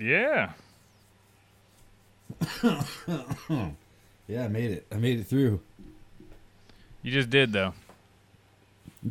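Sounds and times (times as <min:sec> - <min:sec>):
speech: 0:00.0 - 0:00.6, 0:02.4 - 0:05.7, 0:07.0 - 0:07.8
small soft cough: 0:02.3 - 0:03.8.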